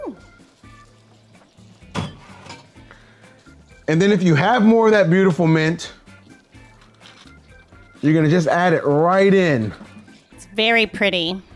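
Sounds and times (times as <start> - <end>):
champagne pouring into a glass of crushed ice: 0.0 - 10.3
speech: 0.1 - 0.3, 3.9 - 6.0, 8.0 - 9.8, 10.6 - 11.5
clink and splash: 1.8 - 2.8.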